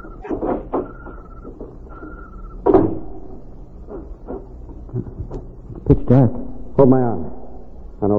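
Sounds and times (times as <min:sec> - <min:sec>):
door creaking open on squeaky hinges: 0:00.0 - 0:05.9
handling noises: 0:00.0 - 0:06.0
heavy thud: 0:02.6 - 0:03.5
speech: 0:05.9 - 0:07.3.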